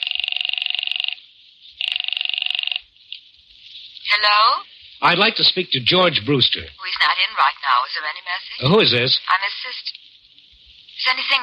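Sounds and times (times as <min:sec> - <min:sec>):
old-style telephone bell ringing: 0:00.0 - 0:01.2, 0:01.8 - 0:02.9
speech: 0:04.2 - 0:10.0, 0:11.0 - 0:11.4.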